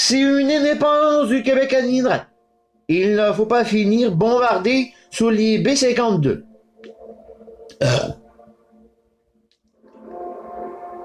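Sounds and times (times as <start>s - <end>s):
speech: 0.1s - 2.3s, 2.9s - 6.5s, 7.8s - 8.2s
loud raspy burp: 7.7s - 8.3s.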